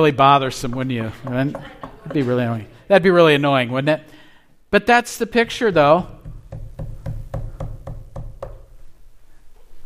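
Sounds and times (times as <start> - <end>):
speech: 0.0 - 6.2
firm knocks on a hard surface: 0.6 - 2.3, 6.2 - 8.7.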